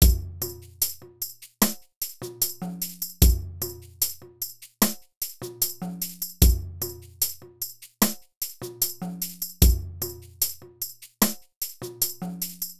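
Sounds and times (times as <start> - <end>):
drum: 0.0 - 12.7.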